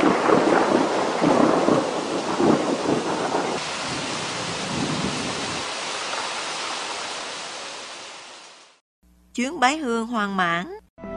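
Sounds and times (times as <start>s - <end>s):
low thunder rumbling: 0.0s - 5.6s
heavy rain pouring: 0.0s - 8.8s
speech: 9.4s - 10.8s.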